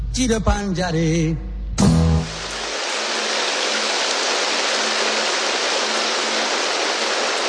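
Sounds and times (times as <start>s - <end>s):
speech: 0.2s - 1.5s
steady dense rain hissing: 1.8s - 7.4s.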